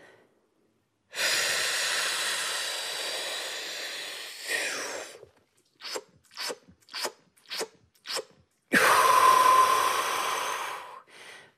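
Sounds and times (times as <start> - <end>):
freediver taking a long deep breath in: 1.1 - 5.2, 8.8 - 11.5.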